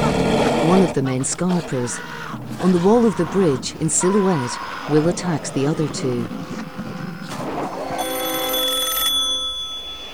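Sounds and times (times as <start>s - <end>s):
speech: 0.7s - 6.9s
telephone beside a hotel bed ringing with electronic trill: 7.9s - 10.1s.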